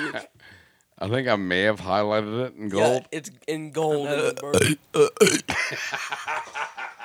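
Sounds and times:
speech: 0.1s - 7.0s
long stuttering burp: 4.2s - 5.6s
laughter: 5.5s - 7.0s.

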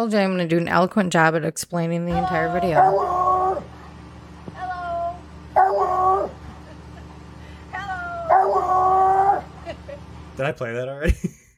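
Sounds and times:
speech: 0.0s - 3.2s, 10.4s - 11.4s
dog whining and howling: 2.1s - 3.8s, 4.6s - 6.5s, 7.8s - 9.8s.

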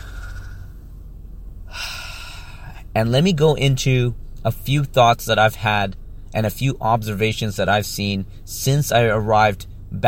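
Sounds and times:
person taking a quick deep breath: 0.0s - 0.8s, 1.7s - 2.8s
low steady hum: 0.0s - 10.0s
speech: 3.0s - 10.0s.

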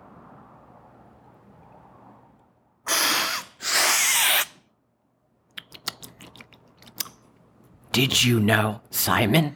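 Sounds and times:
slurping coffee at a coffee cupping tasting: 2.9s - 4.5s
speech: 8.0s - 9.5s.

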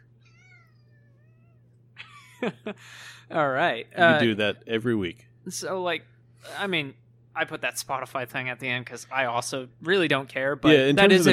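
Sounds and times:
cat meowing: 0.0s - 1.7s
speech: 2.4s - 11.3s.

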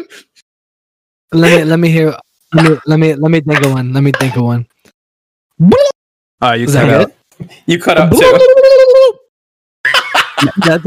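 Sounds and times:
speech: 1.3s - 4.7s, 5.6s - 9.2s, 10.4s - 10.8s
person imitating a turkey gobble: 8.2s - 9.2s
laughter: 9.9s - 10.8s.

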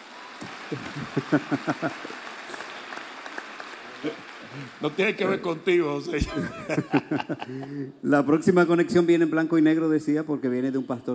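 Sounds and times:
audience applause: 0.0s - 6.1s
laughter: 0.5s - 2.6s, 6.1s - 7.8s
speech: 0.7s - 2.2s, 4.0s - 11.1s.

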